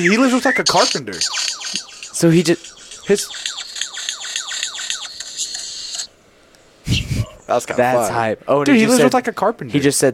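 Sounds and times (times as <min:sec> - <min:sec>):
speech: 0:00.0 - 0:01.5, 0:02.2 - 0:03.5, 0:07.5 - 0:10.1
bird squawking: 0:00.0 - 0:06.1
steady high-pitched whine: 0:00.0 - 0:07.8.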